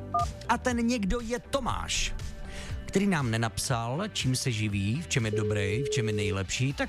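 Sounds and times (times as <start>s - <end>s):
speech: 0.2s - 2.3s, 2.9s - 6.8s
touch-tone beeps of a phone number being dialed: 5.3s - 6.3s.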